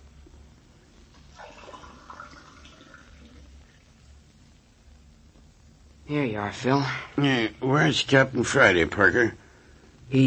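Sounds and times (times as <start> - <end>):
water running from a tap into a glass: 1.3 - 3.9
speech: 6.1 - 9.4.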